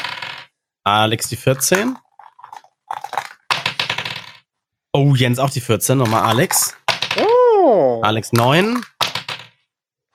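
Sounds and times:
speech: 0:00.8 - 0:02.0, 0:05.0 - 0:08.9
dice rattling and tumbling during a game: 0:01.5 - 0:04.5, 0:06.0 - 0:07.2, 0:08.4 - 0:09.6.

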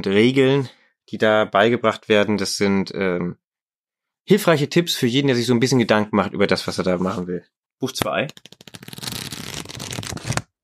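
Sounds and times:
speech: 0:00.0 - 0:03.4, 0:04.2 - 0:09.1
book pages riffled quickly: 0:08.3 - 0:10.5.

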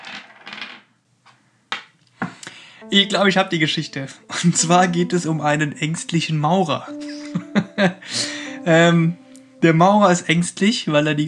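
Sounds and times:
dice landing and rolling: 0:00.0 - 0:00.9
speech: 0:02.8 - 0:11.2.

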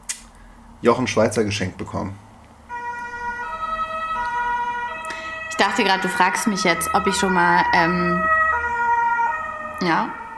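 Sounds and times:
steady traffic noise: 0:00.0 - 0:10.3
speech: 0:00.8 - 0:02.2, 0:05.6 - 0:08.4, 0:09.8 - 0:10.2
emergency vehicle siren passing: 0:02.7 - 0:10.3.

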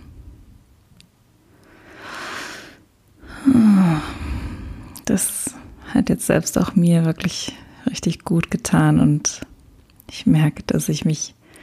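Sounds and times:
deep slow breathing exercise: 0:01.5 - 0:05.0
slight voiced sigh at start of exhale: 0:01.8 - 0:05.0
speech: 0:05.1 - 0:05.4, 0:06.0 - 0:09.5, 0:10.1 - 0:11.4.

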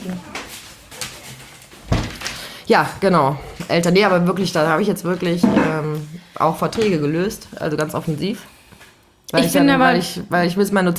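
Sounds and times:
soft rustling and shuffling: 0:00.0 - 0:10.2
door being shut with a heavy thud: 0:01.8 - 0:02.4
speech: 0:02.7 - 0:08.6, 0:09.3 - 0:10.9.

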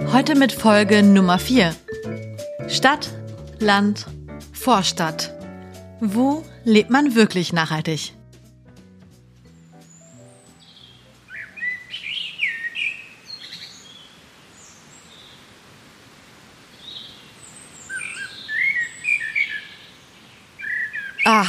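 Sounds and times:
soft steady outdoor background: 0:00.0 - 0:21.4
speech: 0:00.1 - 0:01.9, 0:02.6 - 0:05.4, 0:06.0 - 0:08.2, 0:21.3 - 0:21.4
several birds chirping and singing: 0:09.6 - 0:14.1, 0:17.0 - 0:21.4.

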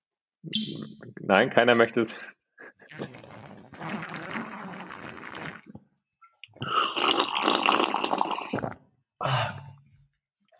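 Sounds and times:
speech: 0:00.4 - 0:04.2
loud slurping of tea: 0:02.9 - 0:05.8, 0:06.6 - 0:08.8.

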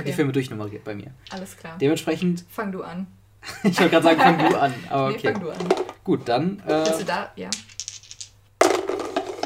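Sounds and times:
speech: 0:00.0 - 0:07.8
laughter: 0:03.4 - 0:05.0
dice shaken with a soft rattle: 0:05.5 - 0:06.0, 0:06.7 - 0:09.4
dice tumbling out in rapid clicks and clatters: 0:06.7 - 0:09.4.

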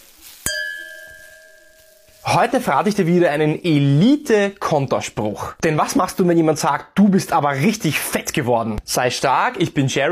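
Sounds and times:
two glasses of Riesling wine clinking in a toast: 0:00.4 - 0:02.3
speech: 0:02.2 - 0:10.1.

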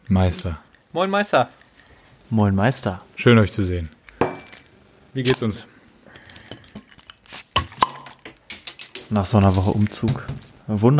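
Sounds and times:
speech: 0:00.1 - 0:01.6, 0:02.3 - 0:04.0, 0:05.2 - 0:05.7, 0:09.1 - 0:10.9
glasses clinking together in a toast: 0:04.2 - 0:04.6, 0:07.6 - 0:10.5
light clatters and knocks of glass and tableware: 0:04.2 - 0:04.6, 0:06.4 - 0:10.5.

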